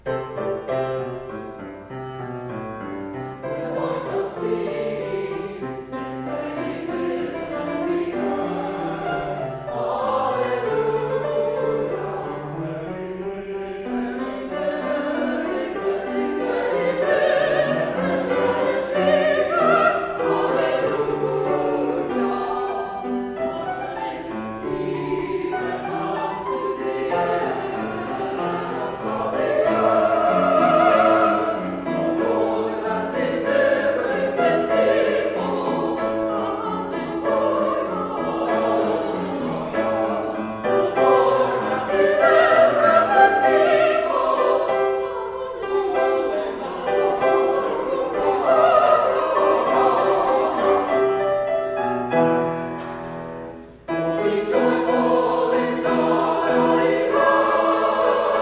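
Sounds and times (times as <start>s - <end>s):
choir singing: 0.0s - 58.3s.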